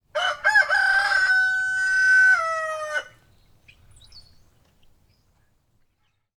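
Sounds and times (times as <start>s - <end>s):
rooster crowing: 0.2s - 3.2s.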